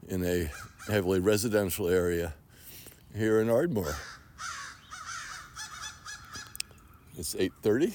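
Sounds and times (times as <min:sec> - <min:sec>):
speech: 0:00.1 - 0:02.4, 0:03.1 - 0:04.5, 0:07.2 - 0:07.9
large flock of crows cawing from a tulip poplar in a residential neighbourhood: 0:03.8 - 0:07.9.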